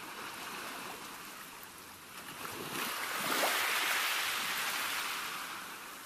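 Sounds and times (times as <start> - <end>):
ocean waves washing onto a beach: 0.0 - 6.0.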